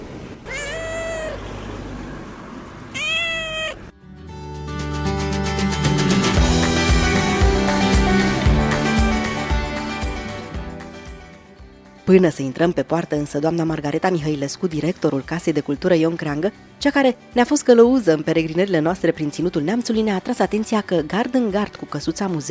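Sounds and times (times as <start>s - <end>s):
cat meowing: 0.4s - 1.5s, 2.9s - 3.9s
music: 3.9s - 22.5s
speech: 12.1s - 22.5s.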